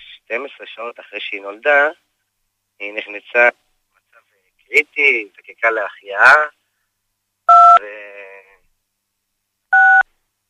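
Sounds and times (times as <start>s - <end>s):
speech: 0.3s - 2.0s, 2.8s - 3.6s, 4.7s - 6.6s, 7.5s - 8.2s
telephone keypad buttons pressed during a call: 7.5s - 7.8s, 9.7s - 10.0s.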